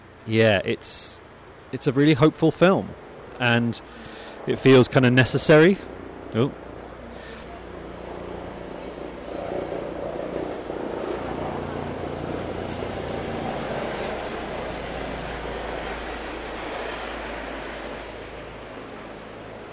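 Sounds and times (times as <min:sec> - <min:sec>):
helicopter engine and rotor drone at a helicopter airfield: 0:00.0 - 0:19.7
speech: 0:00.2 - 0:06.6.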